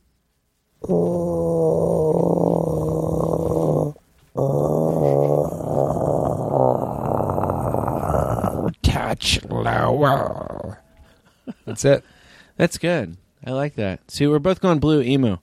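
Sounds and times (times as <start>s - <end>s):
speech: 0.8s - 1.4s, 10.0s - 10.4s, 11.7s - 15.4s
voice imitating a cat purring: 0.8s - 8.8s, 9.7s - 10.8s.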